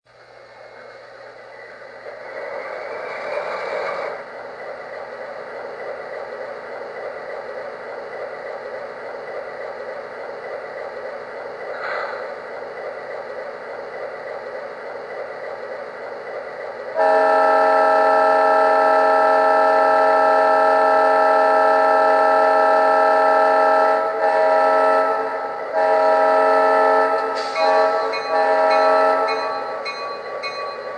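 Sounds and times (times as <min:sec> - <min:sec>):
DASH 8 electric train: 0:00.1 - 0:30.9.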